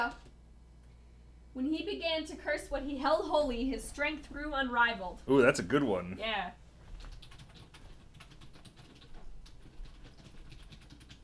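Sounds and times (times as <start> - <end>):
low steady hum: 0.0 - 7.3
speech: 1.6 - 6.6
typing on a computer keyboard: 6.9 - 11.2.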